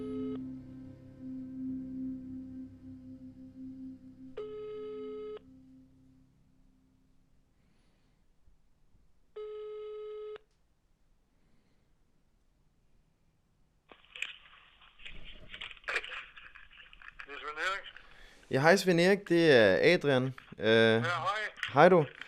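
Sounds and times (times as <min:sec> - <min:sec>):
ringback tone of an outgoing telephone call: 0:04.4 - 0:05.4, 0:09.4 - 0:10.4
speech: 0:18.5 - 0:22.2.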